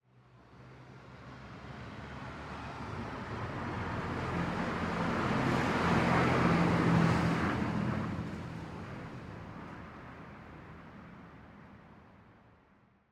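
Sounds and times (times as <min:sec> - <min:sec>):
car passing by at medium speed in an urban setting: 0:00.5 - 0:10.8.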